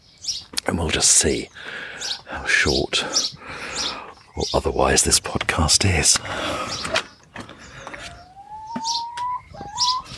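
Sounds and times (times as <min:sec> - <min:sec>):
garden birds chirping around a mealworm feeding spot: 0:00.0 - 0:10.1
speech: 0:00.7 - 0:07.1.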